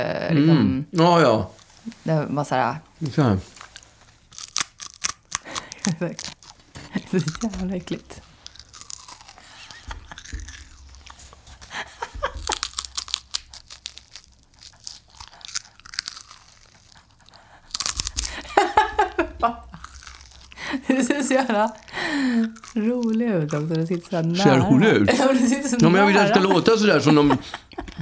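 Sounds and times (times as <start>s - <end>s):
speech: 0.0s - 3.6s, 6.0s - 6.3s, 7.1s - 8.3s, 21.6s - 28.0s
person biting and chewing a crunchy rice cake, ASMR-style: 3.6s - 18.5s, 19.7s - 20.6s, 21.6s - 24.4s
laughter: 11.6s - 12.7s, 18.3s - 19.8s, 24.7s - 28.0s.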